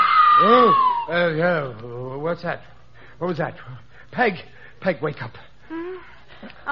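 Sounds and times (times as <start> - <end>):
wavering voice-like cries: 0.0 - 1.3
eerie unearthly high wailing tone at night: 0.0 - 1.4
speech: 0.4 - 5.8, 6.4 - 6.6.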